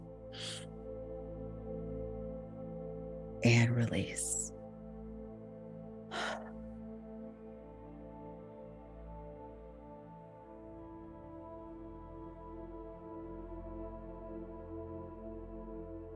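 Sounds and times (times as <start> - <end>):
steady low droning music bed: 0.0 - 16.1
speech: 3.4 - 4.5
quick deep breath in during a guided relaxation exercise: 6.1 - 6.5.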